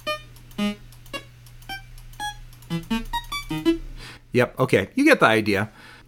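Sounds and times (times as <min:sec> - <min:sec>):
synthesized menu-select blips and beeps made with a sound effect program: 0:00.0 - 0:03.8
faint steady hum: 0:00.0 - 0:06.0
speech: 0:02.8 - 0:03.2, 0:04.4 - 0:06.0.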